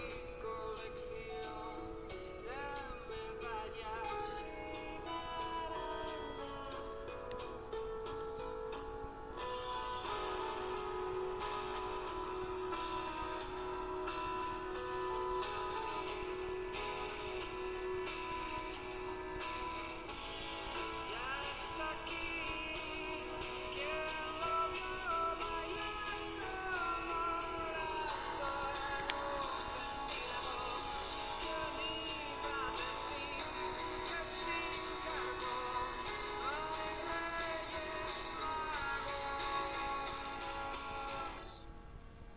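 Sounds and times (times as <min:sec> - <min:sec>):
pop-rock song with layered sustained instruments: 0:00.0 - 0:41.6.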